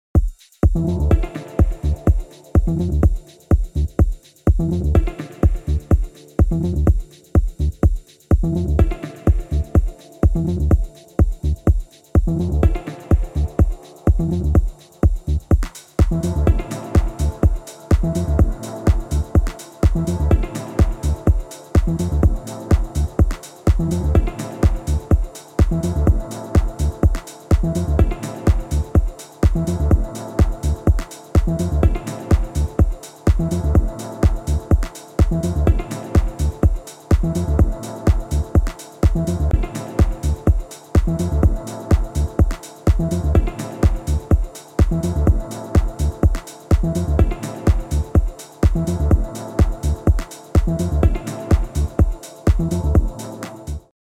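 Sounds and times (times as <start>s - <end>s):
techno music mix: 0.7s - 53.9s.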